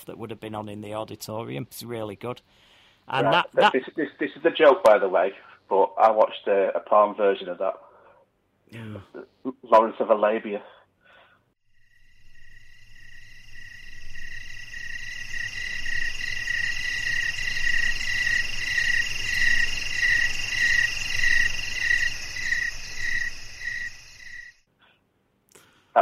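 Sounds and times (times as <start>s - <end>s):
speech: 0.0s - 7.9s, 8.7s - 10.8s
crickets chirping in a continuous chorus: 11.6s - 24.7s.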